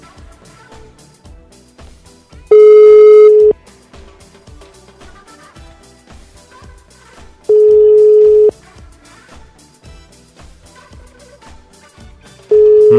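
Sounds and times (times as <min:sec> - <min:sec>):
telephone line beeps during a failed call: 0:02.5 - 0:03.5, 0:07.5 - 0:08.5, 0:12.5 - 0:12.9.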